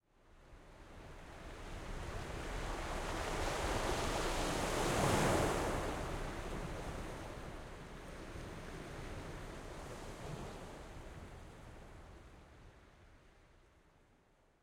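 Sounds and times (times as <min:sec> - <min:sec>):
ocean: 0:00.3 - 0:14.6.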